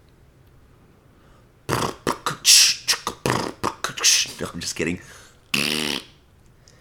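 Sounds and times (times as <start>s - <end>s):
voice imitating flatulence with sputtering raspberry bursts: 1.7s - 4.4s, 5.5s - 6.2s
speech: 4.3s - 5.2s.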